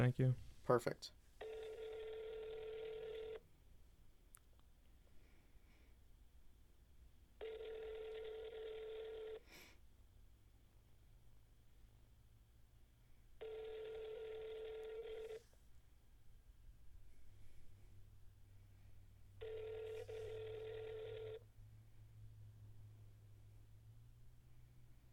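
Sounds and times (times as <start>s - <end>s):
speech: 0.0s - 1.2s
faint hum: 0.0s - 25.1s
phone ringback tone over speakerphone: 1.4s - 3.4s, 7.4s - 9.4s, 13.4s - 15.4s, 19.4s - 21.4s.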